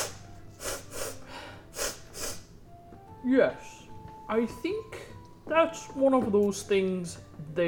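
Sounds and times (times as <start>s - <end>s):
person imitating a horse sniffing through its nostrils: 0.0s - 2.5s
speech: 3.2s - 7.6s.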